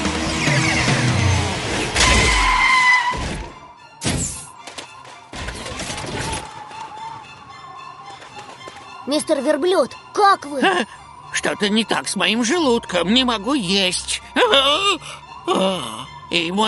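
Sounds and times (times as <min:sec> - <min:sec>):
rescue bus rushing in and skidding to a halt: 0:00.0 - 0:03.5
speech: 0:09.1 - 0:16.6.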